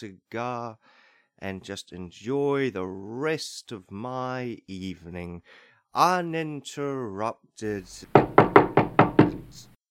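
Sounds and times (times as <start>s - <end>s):
speech: 0.0s - 8.3s, 9.5s - 9.7s
knocking on a door: 8.0s - 9.7s.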